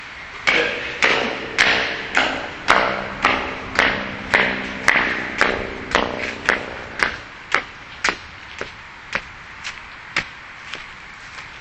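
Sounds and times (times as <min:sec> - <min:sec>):
marching footsteps: 0:01.0 - 0:11.5.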